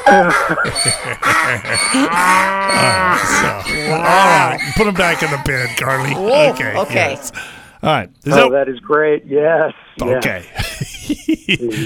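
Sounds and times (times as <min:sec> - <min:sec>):
laughter: 0:00.0 - 0:07.4, 0:10.1 - 0:11.8
speech: 0:00.1 - 0:11.8
person in a studio imitating a donkey-cow hybrid mooing: 0:01.3 - 0:04.7, 0:05.9 - 0:07.4
breaths: 0:07.3 - 0:07.8.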